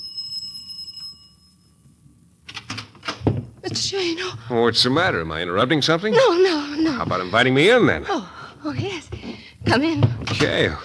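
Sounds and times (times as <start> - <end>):
doorbell chime at the front door of a house: 0.0 - 1.8
speech: 3.8 - 10.8.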